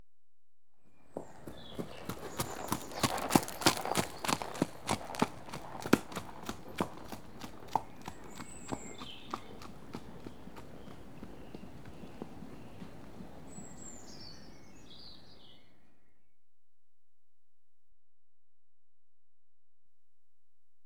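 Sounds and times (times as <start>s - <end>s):
one unshod horse passing at trot: 1.2s - 13.6s.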